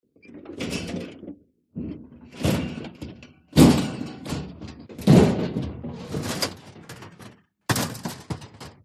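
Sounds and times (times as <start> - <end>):
metal junk clattering and crashing: 1.9 - 8.8.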